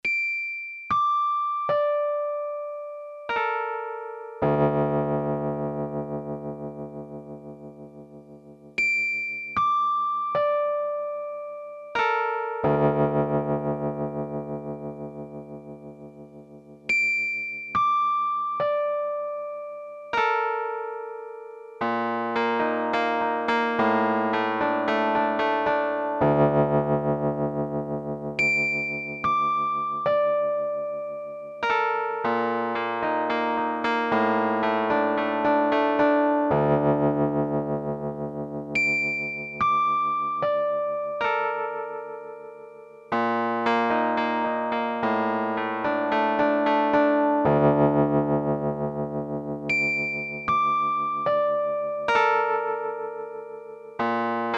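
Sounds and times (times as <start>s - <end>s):
V-Piano digital piano: 0.9s - 54.5s.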